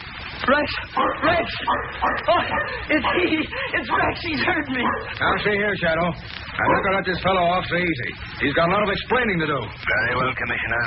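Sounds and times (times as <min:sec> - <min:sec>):
speech: 0:00.5 - 0:10.8
dog giving sharp yelping barks: 0:00.9 - 0:05.6, 0:06.6 - 0:07.1.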